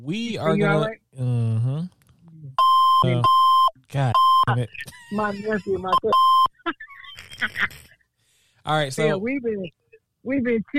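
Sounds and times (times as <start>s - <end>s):
speech: 0.0s - 6.5s, 8.7s - 10.7s
loud steady electronic beep: 2.6s - 4.7s, 5.9s - 6.5s.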